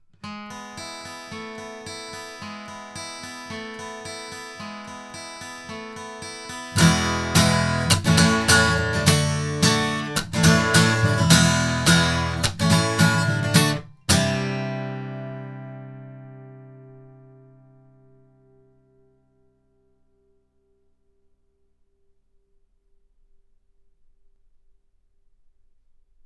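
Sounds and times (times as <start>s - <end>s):
guitar recorded with an Avant CV-12 tube microphone: 0.0s - 20.8s.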